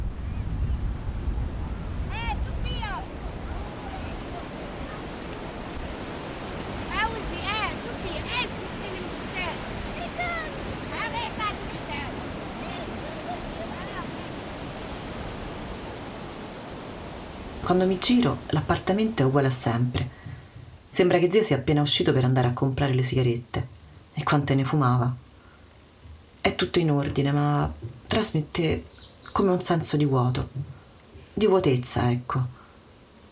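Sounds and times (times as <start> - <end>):
surf rushing on a seafront: 0.0 - 19.6
distant voices and calls on a seafront: 1.3 - 18.4
speech: 17.7 - 20.2, 21.0 - 25.2, 26.4 - 30.7, 31.4 - 32.6.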